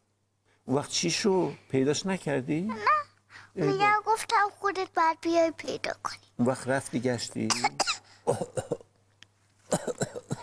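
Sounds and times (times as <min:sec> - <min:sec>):
faint steady hum: 0:00.0 - 0:10.4
speech: 0:00.7 - 0:08.8
child coughing harshly: 0:07.5 - 0:08.8, 0:09.7 - 0:10.4.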